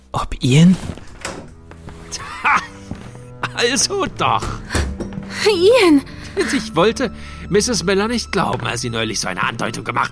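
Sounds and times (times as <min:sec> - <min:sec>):
speech: 0:00.1 - 0:00.9, 0:03.6 - 0:10.0
house door thunks and clicks: 0:01.0 - 0:01.7, 0:04.4 - 0:05.3.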